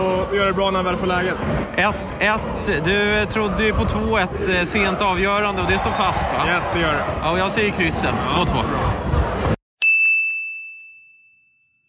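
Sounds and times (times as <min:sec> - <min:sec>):
speech: 0:00.0 - 0:09.0
bright game-show-style bell ding: 0:09.8 - 0:11.8.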